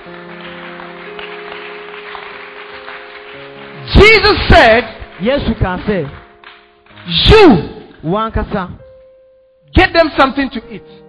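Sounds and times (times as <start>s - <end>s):
crowd clapping: 0.0s - 7.3s
speech: 4.0s - 6.2s, 7.1s - 8.8s, 9.7s - 11.0s.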